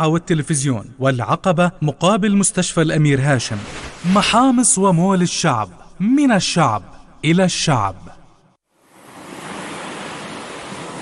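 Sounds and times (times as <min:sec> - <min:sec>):
speech: 0:00.0 - 0:08.2
ocean waves breaking on the shore: 0:03.4 - 0:04.8, 0:08.9 - 0:11.0.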